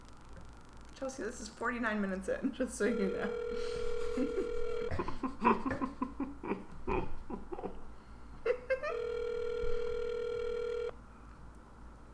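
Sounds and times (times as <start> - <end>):
speech: 1.0 - 5.8
phone call ringing through a handset before voicemail: 2.8 - 5.2, 8.8 - 11.0
laughter: 3.0 - 9.0.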